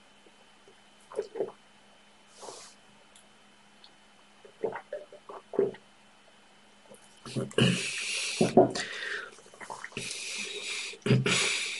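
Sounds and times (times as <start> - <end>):
person gulping and swallowing water: 1.1 - 1.6, 4.4 - 5.8, 6.9 - 10.2
soft breath: 7.8 - 11.7.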